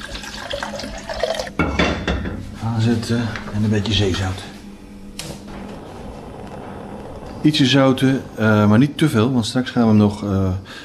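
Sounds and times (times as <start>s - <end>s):
water poured into a pot of sushi rice: 0.0s - 1.5s
speech: 2.7s - 4.5s, 7.4s - 10.8s.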